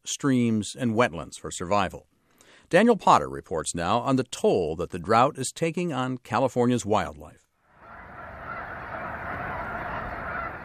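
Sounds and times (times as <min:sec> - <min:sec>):
speech: 0:00.1 - 0:02.1, 0:02.7 - 0:07.4
huge flock of snow geese honking while taking off: 0:07.8 - 0:10.6.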